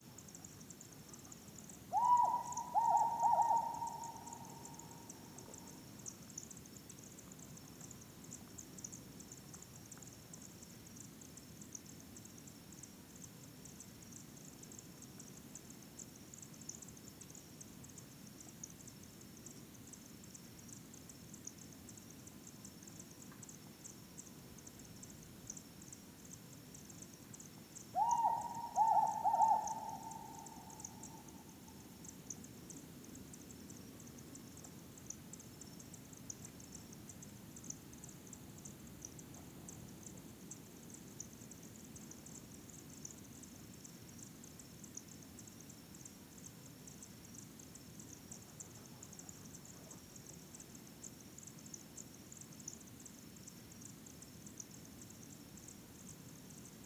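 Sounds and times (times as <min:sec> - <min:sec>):
presumed female Hume's owl compound hooting: 0:01.9 - 0:05.4, 0:28.0 - 0:31.7.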